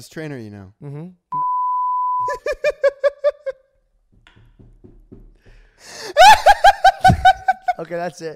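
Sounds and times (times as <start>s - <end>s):
speech: 0.0s - 1.4s, 7.8s - 8.3s
censor bleep: 1.3s - 2.3s
rhythmic laughter: 2.3s - 3.6s, 5.8s - 7.8s.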